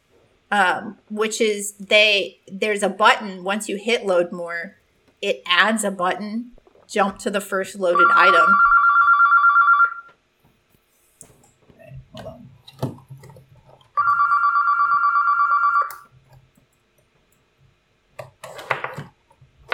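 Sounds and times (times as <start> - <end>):
speech: 0.5 - 8.6
telephone ringing with a trilling buzz: 7.9 - 10.1, 14.0 - 16.1.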